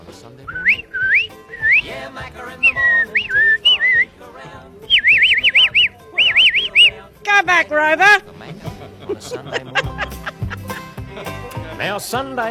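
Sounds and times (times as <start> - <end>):
person whistling calls and warbling trills to call up cattle: 0.5 - 2.0, 2.6 - 4.1, 4.8 - 7.0
speech: 7.4 - 9.8, 11.8 - 12.4
laughter: 8.3 - 12.0.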